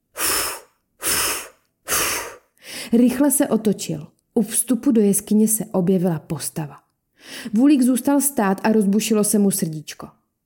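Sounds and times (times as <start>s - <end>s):
loud heavy harsh airy breathing: 0.1s - 2.9s
speech: 2.9s - 10.2s.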